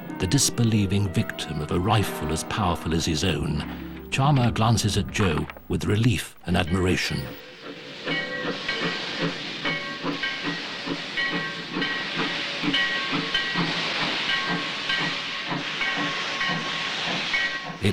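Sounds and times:
steam freight train pulling into a station: 0.0 - 17.9
speech: 0.1 - 7.5.

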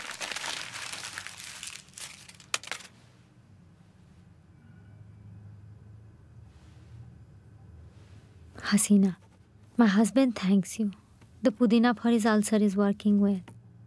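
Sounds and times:
paper letter being crumpled up by hand: 0.0 - 2.9
speech: 8.6 - 9.2, 9.8 - 13.5.

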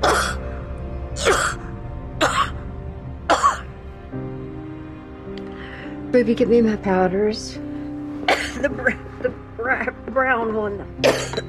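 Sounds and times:
woman coughing: 0.0 - 0.4, 1.2 - 1.6, 3.3 - 3.6, 8.3 - 9.0, 11.0 - 11.4
speech: 6.2 - 7.6, 8.6 - 11.4.

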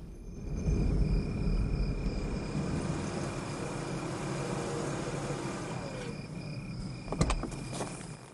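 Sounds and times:
sedan driving with steady low engine and road rumble: 0.0 - 8.3
clunk of sedan coming to a stop: 2.1 - 8.2.

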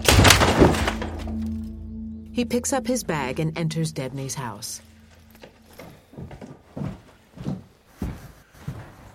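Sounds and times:
wooden door being kicked open: 0.0 - 1.4
low lingering hum: 0.0 - 7.2
speech: 2.4 - 4.9.

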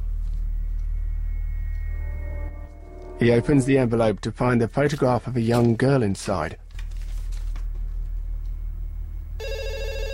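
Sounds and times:
low steady hum: 0.0 - 10.1
speech: 3.2 - 6.6
telephone ringing with a bright electronic trill: 9.4 - 10.1.

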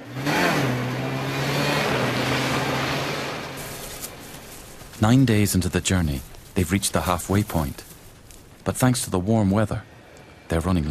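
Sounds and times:
snowmobile engine starting and riding away: 0.0 - 5.0
speech: 5.0 - 7.9, 8.7 - 9.9, 10.5 - 10.8.

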